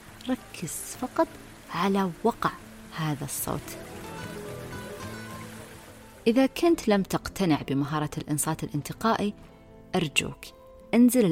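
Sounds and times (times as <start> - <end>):
steady rain hitting the ground: 0.0 - 6.6
speech: 0.2 - 3.9, 6.3 - 11.3.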